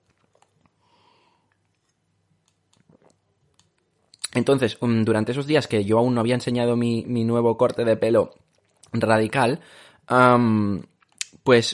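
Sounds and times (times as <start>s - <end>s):
person taking a quiet sip of a drink: 0.1s - 3.3s
speech: 4.4s - 11.7s.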